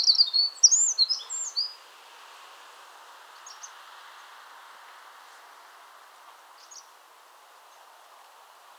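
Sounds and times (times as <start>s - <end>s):
Eurasian wren Troglodytes troglodytes singing: 0.0s - 1.8s
faint background noise: 0.0s - 8.7s.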